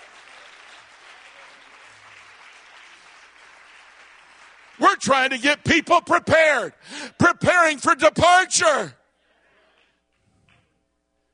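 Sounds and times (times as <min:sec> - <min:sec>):
audience clapping hands: 0:00.0 - 0:05.6
speech: 0:04.8 - 0:09.0.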